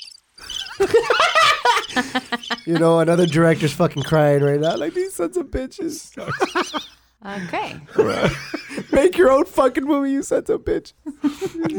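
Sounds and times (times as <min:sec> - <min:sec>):
crickets chirping in shrill pulses: 0:00.0 - 0:05.0
laughter: 0:00.4 - 0:10.0, 0:10.7 - 0:11.7
speech: 0:00.8 - 0:01.3, 0:02.0 - 0:11.7.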